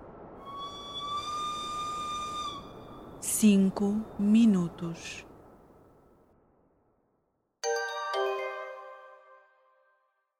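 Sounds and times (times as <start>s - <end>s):
high-pitched whistle sounding from cabin doors: 0.4s - 3.3s
speech: 3.4s - 5.3s.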